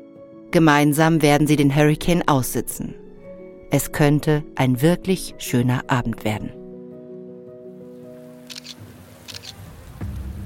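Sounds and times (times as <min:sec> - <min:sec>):
speech: 0:00.5 - 0:03.0, 0:03.7 - 0:06.6
digital camera shutter clicks: 0:08.5 - 0:09.6.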